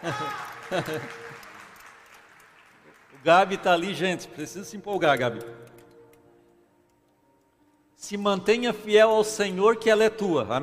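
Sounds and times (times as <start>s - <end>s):
speech: 0.0s - 1.2s, 3.2s - 5.7s, 8.0s - 10.6s
laughter: 0.0s - 1.6s
audience applause: 0.0s - 3.8s.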